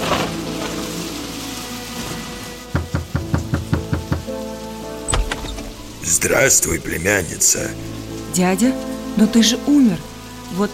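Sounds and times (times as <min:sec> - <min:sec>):
steady rain hissing on a rainy evening: 0:00.0 - 0:10.7
loud knocks on a door: 0:02.7 - 0:04.3
speech: 0:06.1 - 0:10.7.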